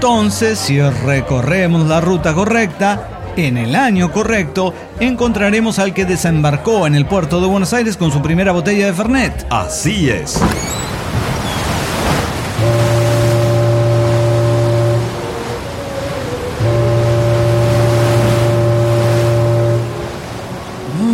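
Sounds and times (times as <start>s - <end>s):
speech: 0.0s - 10.9s
ocean waves: 10.3s - 21.1s
ship horn of a vessel arriving at the port of Buenos Aires: 12.5s - 21.0s.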